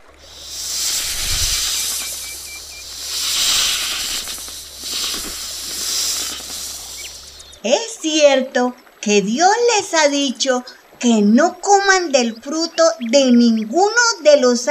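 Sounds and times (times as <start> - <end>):
snake hissing sound effect: 0.0 - 7.6
speech: 7.6 - 14.7.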